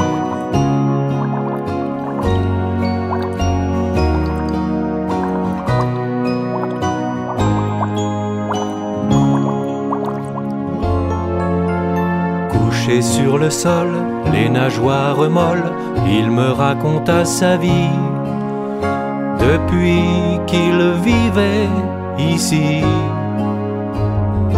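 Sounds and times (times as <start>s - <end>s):
water bubbles popping: 0.0s - 11.0s
tonal musical backing: 0.0s - 24.5s
speech: 13.2s - 18.1s, 18.8s - 23.2s.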